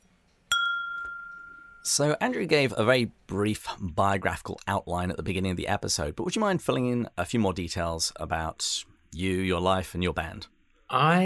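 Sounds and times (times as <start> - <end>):
glasses clinking in a toast: 0.5 - 1.9
speech: 1.8 - 11.2.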